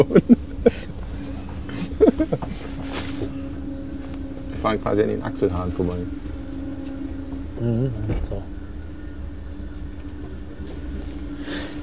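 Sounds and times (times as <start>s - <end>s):
laughter: 0.0s - 3.4s
rumble inside a moving train carriage: 0.0s - 11.8s
speech: 4.6s - 6.2s, 7.6s - 8.5s.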